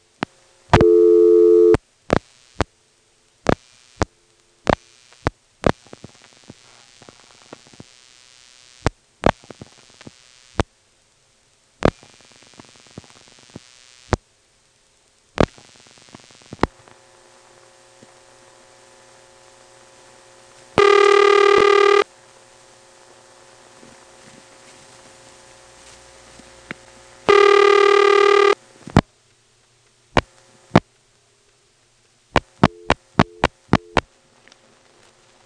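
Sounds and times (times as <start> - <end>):
faint hum: 0.0 - 35.4
telephone exchange supervision test line tone: 0.8 - 1.8, 20.8 - 22.1, 27.3 - 28.6, 32.6 - 34.0.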